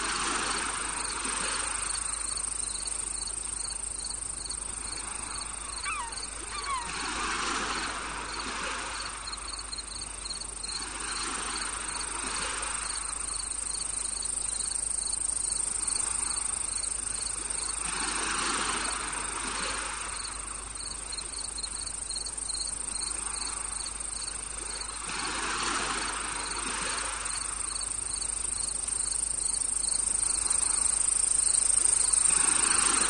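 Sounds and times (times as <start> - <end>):
tropical beach ambience at sunset: 0.0 - 33.0.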